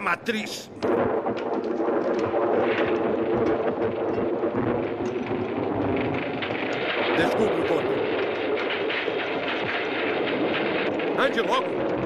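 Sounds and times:
speech: 0:00.0 - 0:01.2, 0:11.2 - 0:12.0
thunderstorm: 0:00.8 - 0:12.0.

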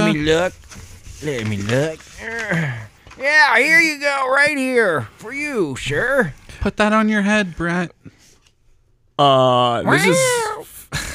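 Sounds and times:
speech: 0:00.1 - 0:00.6, 0:01.2 - 0:08.0, 0:09.2 - 0:11.0
cat covered in lice meowing: 0:09.9 - 0:10.6.

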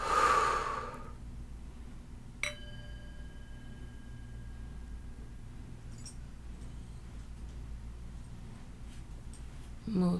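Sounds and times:
deep inhale and exhale breathing: 0:00.0 - 0:01.2
faint brief ping: 0:02.4 - 0:05.2.

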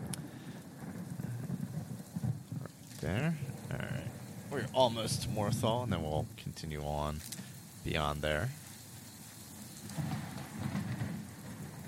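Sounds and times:
dense rain in a swamp on a stormy day: 0:00.0 - 0:11.8
low rolling thunder rumble in a swamp: 0:00.0 - 0:11.8
speech: 0:03.0 - 0:08.6.

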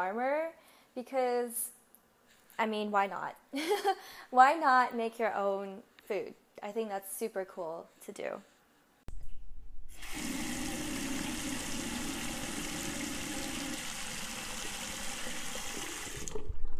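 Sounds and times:
speech: 0:00.0 - 0:01.8, 0:02.6 - 0:08.5
tap water running into a sink washing plant leaves: 0:09.9 - 0:16.7.

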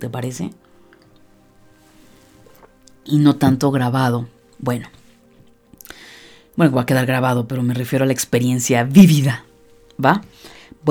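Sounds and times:
speech: 0:00.0 - 0:00.7, 0:03.1 - 0:05.0, 0:06.6 - 0:10.9
person sipping water with wet swallowing: 0:02.0 - 0:03.0.

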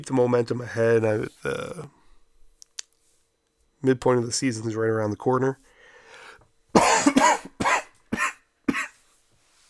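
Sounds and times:
speech: 0:00.0 - 0:02.0, 0:03.8 - 0:05.7
harsh coughs: 0:06.7 - 0:09.0.

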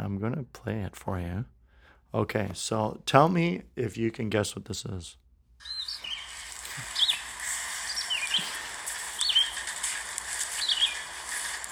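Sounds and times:
speech: 0:00.1 - 0:05.8
steady outdoor hiss of noise: 0:00.2 - 0:11.7
bird singing after rain: 0:05.6 - 0:11.7.

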